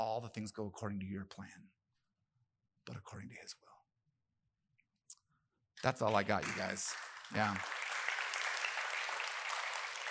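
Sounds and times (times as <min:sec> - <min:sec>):
speech: 0:00.0 - 0:01.8, 0:02.9 - 0:03.8, 0:05.8 - 0:07.8
congregation clapping after sermon: 0:05.8 - 0:10.1.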